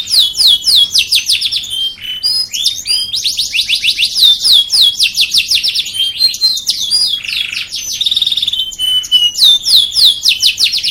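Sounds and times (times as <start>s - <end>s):
canary song with quick chopped trills and long high whistles: 0.0s - 10.8s.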